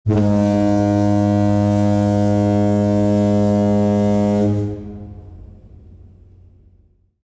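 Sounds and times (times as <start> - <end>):
ferry fog horn: 0.0 - 5.8.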